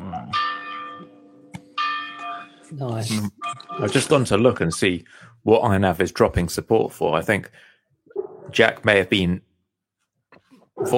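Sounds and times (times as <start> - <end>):
old clock tower bell strikes: 0.3 - 2.7
speech: 2.7 - 7.7, 8.5 - 9.5, 10.8 - 10.9.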